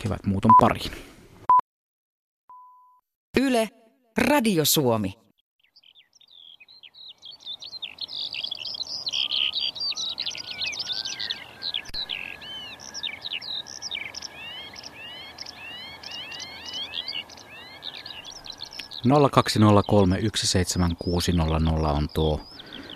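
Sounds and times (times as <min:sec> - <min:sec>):
speech: 0:00.0 - 0:01.1, 0:03.4 - 0:05.2, 0:19.0 - 0:22.5
bird twittering with high chirps and trills: 0:05.6 - 0:22.9.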